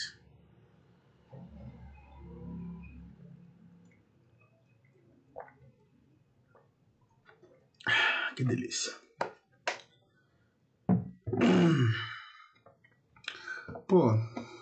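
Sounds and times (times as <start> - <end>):
person gulping and swallowing water: 5.3 - 5.8, 11.1 - 14.6
speech: 8.4 - 9.0, 13.9 - 14.3.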